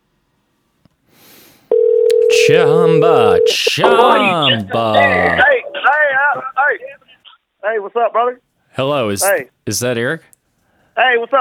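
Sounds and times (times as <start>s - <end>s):
quiet hiss: 0.0s - 11.3s
loud steady electronic phone call tone: 1.7s - 4.0s
speech: 2.5s - 7.0s, 7.6s - 10.3s, 11.0s - 11.3s.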